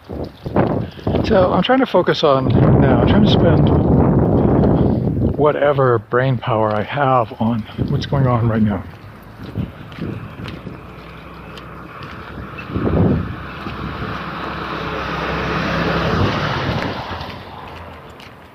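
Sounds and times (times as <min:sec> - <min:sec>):
steady wind noise across the microphone: 0:00.0 - 0:06.0, 0:07.5 - 0:18.2
speech: 0:01.2 - 0:04.0, 0:05.4 - 0:09.6
mail truck driving past outdoors: 0:08.8 - 0:18.5.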